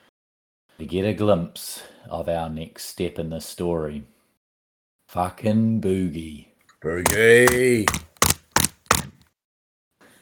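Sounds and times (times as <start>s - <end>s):
speech: 0.8s - 4.2s, 5.1s - 8.1s
hand slapping against a laptop with a ringing thud: 7.1s - 9.1s.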